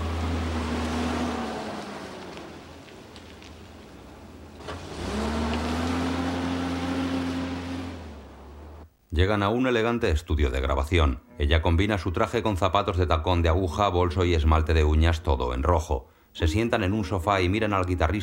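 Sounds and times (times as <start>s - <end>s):
car engine starting and driving off: 0.0s - 8.8s
speech: 9.2s - 18.2s.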